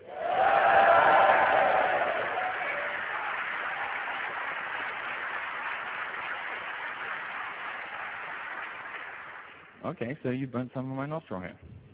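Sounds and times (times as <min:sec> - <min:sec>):
large audience cheering and applauding: 0:00.0 - 0:09.8
speech: 0:09.9 - 0:11.8.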